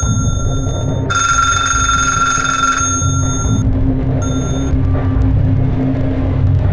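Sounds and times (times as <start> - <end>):
bell-type telephone ringing: 0.0 - 3.6, 4.2 - 4.8
steady low rumble: 0.0 - 6.7.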